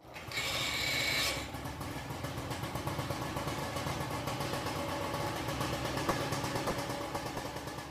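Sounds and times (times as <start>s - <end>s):
old fire pump engine with 800-litre-per-minute pump running: 0.0s - 7.8s.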